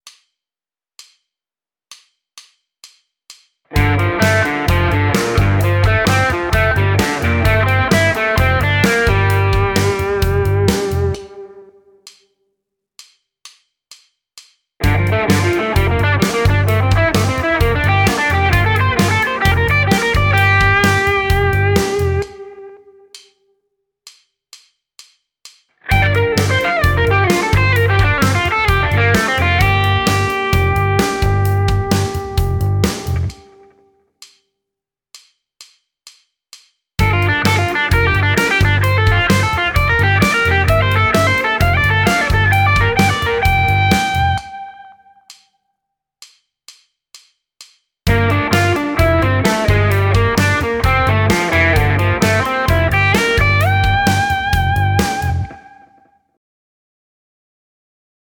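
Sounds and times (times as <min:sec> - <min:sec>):
guitar playing blues arpeggio triads over Gm7: 0:03.8 - 0:11.7, 0:14.8 - 0:22.8, 0:25.9 - 0:33.7, 0:37.0 - 0:45.2, 0:48.1 - 0:56.0.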